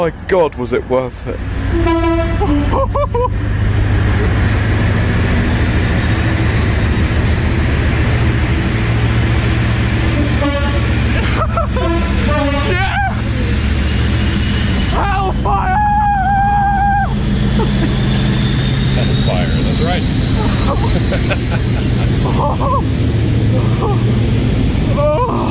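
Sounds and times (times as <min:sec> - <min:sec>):
speech: 0:00.0 - 0:03.6, 0:20.8 - 0:24.2
train rumbling past at Leamington Spa England: 0:00.0 - 0:25.4
sharp metallic train squeals: 0:01.2 - 0:03.0, 0:09.9 - 0:25.2
rising train whine: 0:01.2 - 0:25.4
locomotive sounding its horn tones: 0:01.3 - 0:02.9, 0:10.0 - 0:15.0
laughter: 0:02.7 - 0:03.4, 0:11.1 - 0:13.2, 0:17.6 - 0:18.0, 0:20.4 - 0:22.9.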